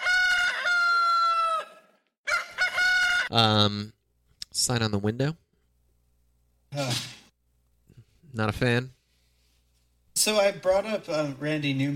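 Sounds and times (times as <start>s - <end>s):
rooster crowing: 0.0s - 3.3s
speech: 3.3s - 5.4s, 6.7s - 7.2s, 8.4s - 9.0s, 10.2s - 11.9s.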